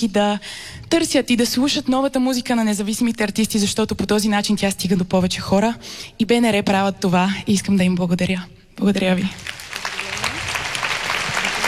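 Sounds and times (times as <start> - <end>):
speech: 0.0 - 9.9
audience applause at a live music event: 9.4 - 11.6.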